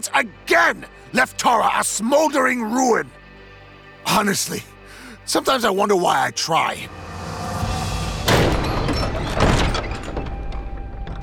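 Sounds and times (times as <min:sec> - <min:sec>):
speech: 0:00.0 - 0:03.2, 0:04.0 - 0:04.7, 0:05.3 - 0:07.0
heavy castle great hall doors banging open: 0:08.2 - 0:11.2.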